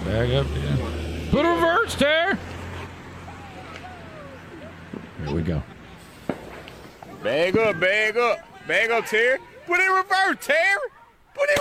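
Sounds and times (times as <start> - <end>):
cars passing on the road: 0.0 - 11.0
speech: 0.1 - 2.5, 5.2 - 5.8, 7.2 - 11.6.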